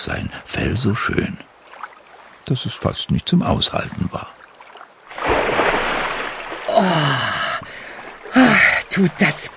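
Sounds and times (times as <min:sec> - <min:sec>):
speech: 0:00.0 - 0:01.5, 0:02.5 - 0:04.4, 0:06.8 - 0:07.3, 0:08.4 - 0:09.5
churning bubbling sea water: 0:03.8 - 0:09.5
young seal splashing into cool sea water: 0:04.7 - 0:07.2.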